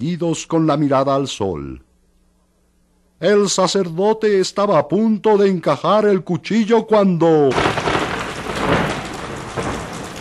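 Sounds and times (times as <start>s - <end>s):
speech: 0.0s - 1.9s, 3.2s - 7.8s
rolling thunder: 7.5s - 10.1s
heavy rain pouring over a city: 7.6s - 10.1s.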